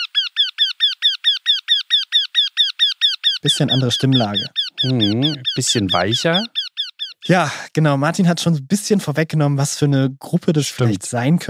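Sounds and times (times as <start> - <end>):
Eurasian wryneck calling: 0.0 - 7.7
speech: 3.4 - 6.6, 7.2 - 11.4.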